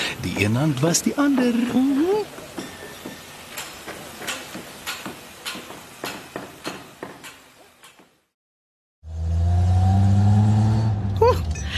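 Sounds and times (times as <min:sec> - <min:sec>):
speech: 0:00.2 - 0:02.4
fancy car engine idling, accelerating and pulling away: 0:09.0 - 0:11.7.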